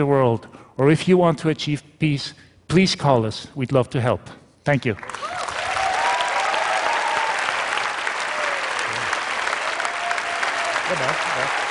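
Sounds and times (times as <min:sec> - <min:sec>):
speech: 0:00.0 - 0:05.4, 0:10.9 - 0:11.6
applause from a large audience: 0:05.1 - 0:11.6
faint whistles and cheers from the audience: 0:05.4 - 0:07.6, 0:09.6 - 0:11.6.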